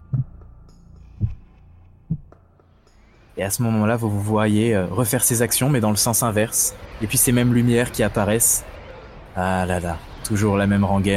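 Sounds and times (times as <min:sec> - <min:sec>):
faint heartbeat: 0:00.0 - 0:02.5
speech: 0:03.4 - 0:08.8, 0:09.4 - 0:11.1.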